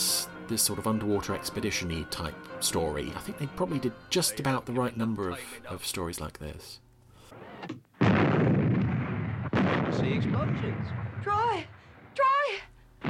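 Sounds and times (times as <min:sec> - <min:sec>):
speech: 0:00.5 - 0:06.8, 0:09.9 - 0:12.7
booming explosions in a TV sound effect: 0:08.0 - 0:12.2.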